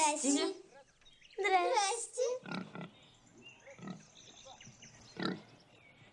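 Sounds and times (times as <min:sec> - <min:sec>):
speech: 0:00.2 - 0:00.6
pig grunting: 0:02.4 - 0:03.0, 0:03.8 - 0:04.1, 0:05.2 - 0:05.5.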